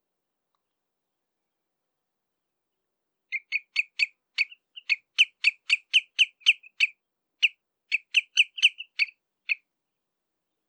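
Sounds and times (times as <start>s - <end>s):
Common redshank contact calls: 3.3s - 9.6s.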